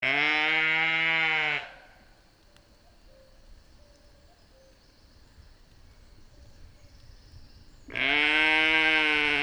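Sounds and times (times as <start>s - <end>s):
small lambs bleating: 0.0s - 1.8s, 7.9s - 9.4s.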